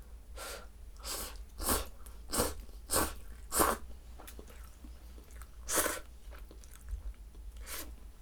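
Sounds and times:
slurping cup noodles: 0.4 - 3.9, 5.4 - 6.1
chewing cup noodles: 1.3 - 8.0.

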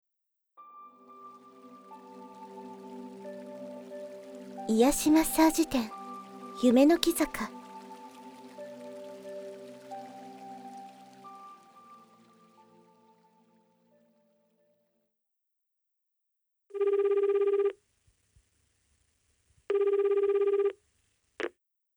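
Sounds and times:
soft musical chime: 0.7 - 13.4
speech: 4.7 - 6.0, 6.6 - 7.6
telephone at a massage shop ringing in buzzing bursts: 16.8 - 17.8, 19.7 - 20.8.

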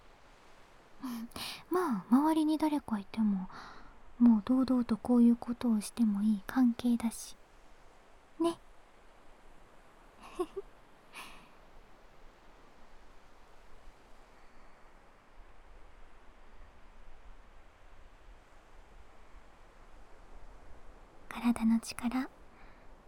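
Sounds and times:
ocean waves: 0.0 - 2.6, 6.6 - 21.3
speech: 1.1 - 7.4, 8.4 - 8.6, 10.4 - 11.3, 21.5 - 22.4.

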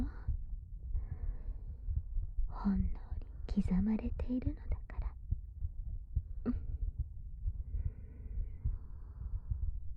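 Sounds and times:
woman's heartbeat heard against her chest: 0.0 - 9.9
speech: 2.6 - 3.0, 3.6 - 4.8, 6.4 - 6.7.

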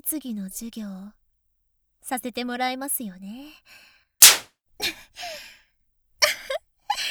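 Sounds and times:
speech: 0.0 - 1.2, 2.0 - 3.9
whip crack: 4.2 - 4.5.

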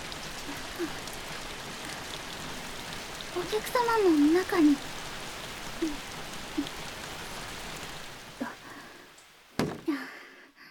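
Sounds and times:
steady dense rain falling: 0.0 - 10.7
speech: 3.4 - 4.9, 5.8 - 6.0
sharp knock: 9.6 - 9.9
soft thumps: 9.6 - 9.9.

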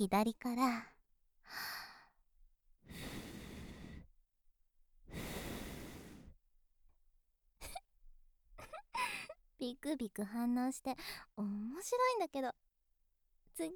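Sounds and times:
speech: 0.0 - 0.9, 1.5 - 1.8, 9.6 - 12.6, 13.6 - 13.7
soft breathy whispered blowing puffs: 2.9 - 4.1, 5.1 - 6.4.

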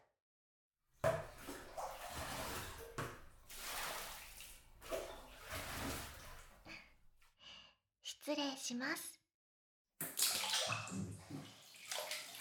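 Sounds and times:
hot bathwater splashing as someone climbs into the tub: 1.0 - 7.1, 10.1 - 12.3
speech: 8.3 - 9.1.

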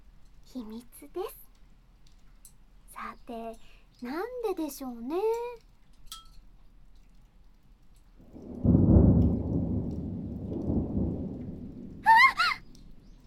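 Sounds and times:
speech: 0.5 - 1.4, 3.3 - 6.2
deep rumble of thunder: 8.2 - 13.2
heavy rain: 8.2 - 13.2.

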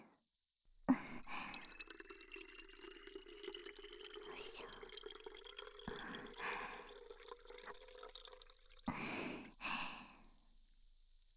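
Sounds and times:
gurgling glugs of liquid in plastic bottle: 0.9 - 10.0
liquid pouring into plastic PET bottle: 0.9 - 10.4.

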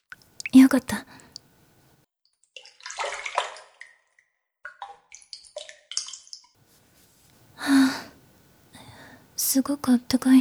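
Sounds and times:
hot bath water sloshing and splashing as someone gets in: 0.0 - 1.8, 2.6 - 10.4
bath water dripping: 0.0 - 1.9, 4.7 - 10.4
soft hiss: 0.0 - 1.9, 6.6 - 10.4
speech: 0.6 - 1.2, 9.5 - 10.4.

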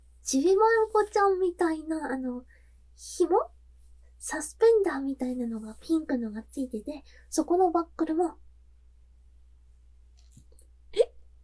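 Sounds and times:
faint low hum: 0.0 - 11.4
speech: 0.3 - 3.6, 4.2 - 8.4
hiccup: 10.9 - 11.2.

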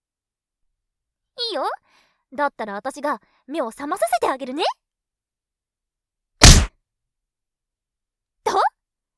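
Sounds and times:
speech: 1.5 - 4.8
punch hitting the nose: 6.4 - 6.7.

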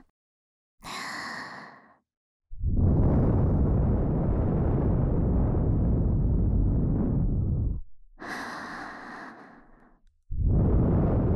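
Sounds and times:
blowing into right ear ASMR loop for sleep: 2.6 - 7.8, 10.3 - 11.3.

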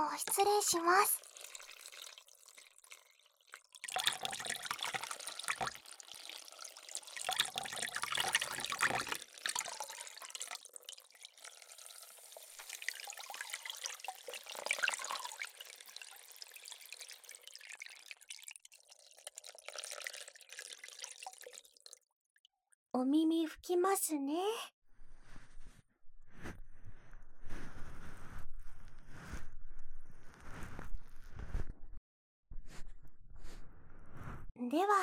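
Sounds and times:
speech: 0.2 - 1.3, 23.7 - 24.8, 34.7 - 35.0
hot water poured over a person to rinse them off: 0.3 - 22.0.

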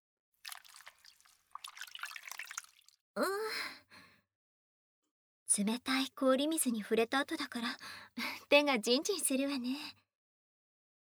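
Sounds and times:
towel wrung out over a basin of hot water: 0.4 - 3.0
speech: 3.2 - 3.4, 5.6 - 10.0
person sighing: 3.2 - 3.8.

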